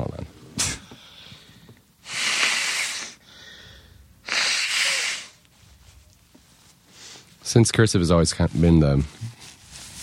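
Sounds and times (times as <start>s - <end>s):
nose blowing: 2.0s - 3.2s, 4.2s - 5.4s
speech: 7.5s - 9.4s.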